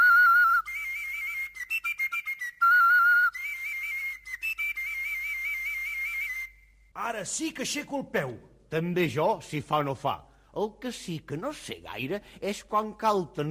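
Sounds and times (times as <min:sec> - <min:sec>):
whistle blown with finger holes covered and uncovered: 0:00.0 - 0:06.9
speech: 0:07.0 - 0:13.5.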